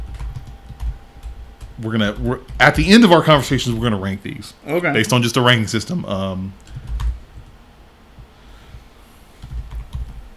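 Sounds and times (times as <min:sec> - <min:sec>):
typing on a computer keyboard: 0:00.0 - 0:03.9, 0:06.6 - 0:07.6, 0:09.4 - 0:10.3
speech: 0:01.8 - 0:06.7.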